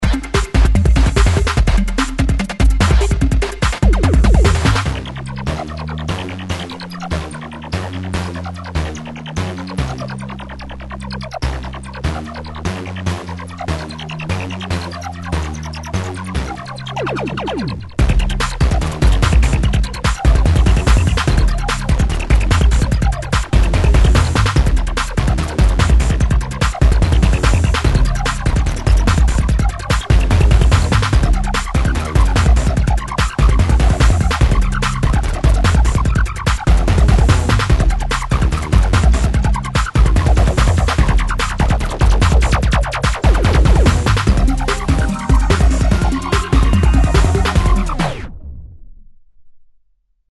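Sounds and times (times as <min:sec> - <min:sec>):
deep bass instrument: 0:00.0 - 0:49.0.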